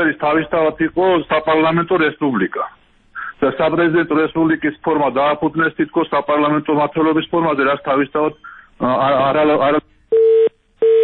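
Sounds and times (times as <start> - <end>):
speech: 0.0 - 2.8, 3.4 - 10.0
telephone beeps after a caller's line disconnects: 10.1 - 11.0.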